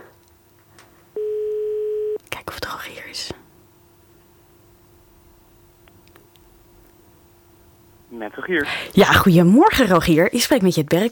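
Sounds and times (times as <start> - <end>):
faint steady electronic tone: 0.0 - 11.1
telephone ringing: 1.2 - 2.2
speech: 8.2 - 11.1.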